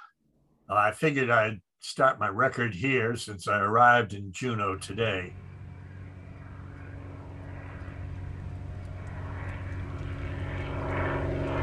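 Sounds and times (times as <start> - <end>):
speech: 0.7 - 5.5
propeller airplane droning: 2.4 - 11.6.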